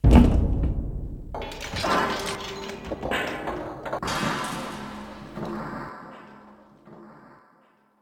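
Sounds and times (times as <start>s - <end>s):
large metal hit: 0.0s - 2.6s, 4.0s - 6.6s.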